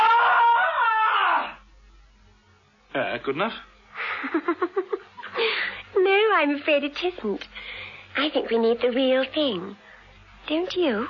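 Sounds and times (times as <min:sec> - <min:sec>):
loud shrill piercing scream: 0:00.0 - 0:01.6
speech: 0:03.0 - 0:07.5, 0:08.2 - 0:09.8, 0:10.5 - 0:11.0.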